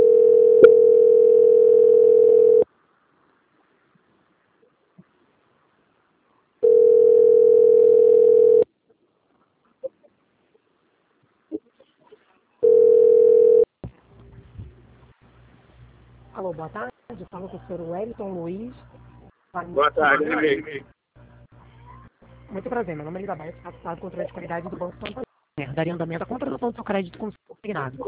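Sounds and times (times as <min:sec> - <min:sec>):
telephone tone while a call is being transferred: 0:00.0 - 0:02.7, 0:06.6 - 0:08.7, 0:12.6 - 0:13.7
speech: 0:16.6 - 0:19.0, 0:19.6 - 0:21.0, 0:22.5 - 0:28.0.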